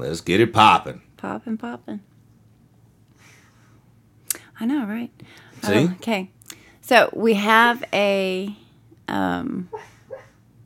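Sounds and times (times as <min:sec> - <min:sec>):
speech: 0:00.0 - 0:02.1, 0:04.6 - 0:09.9
sleeping dog woofing while dreaming: 0:09.7 - 0:10.4.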